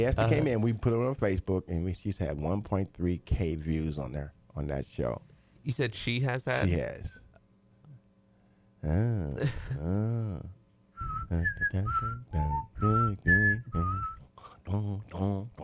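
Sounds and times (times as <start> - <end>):
speech: 0.0 - 7.2, 8.8 - 10.6, 11.3 - 15.6
person humming: 8.8 - 15.6
person whistling a short tune: 11.0 - 14.2.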